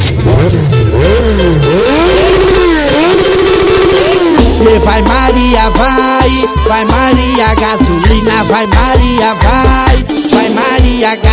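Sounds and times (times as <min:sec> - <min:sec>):
motorcycle engine revving: 0:00.0 - 0:08.4
speech: 0:00.4 - 0:00.7, 0:05.0 - 0:11.3.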